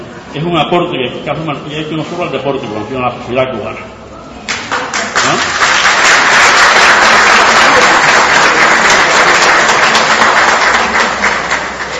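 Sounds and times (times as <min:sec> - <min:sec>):
speech: 0:00.4 - 0:04.0
large audience applauding: 0:04.5 - 0:11.9.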